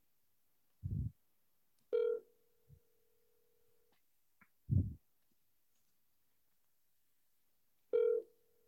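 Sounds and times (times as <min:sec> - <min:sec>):
dull low thumps: 0:00.8 - 0:01.2, 0:04.7 - 0:05.0
outgoing ringback tone on a phone line: 0:01.9 - 0:02.3, 0:07.9 - 0:08.4.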